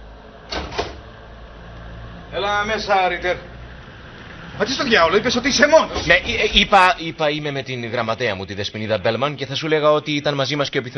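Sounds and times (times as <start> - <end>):
low hum: 0.0 - 10.9
speech: 2.3 - 3.5, 4.6 - 10.9
door being opened: 5.8 - 6.6.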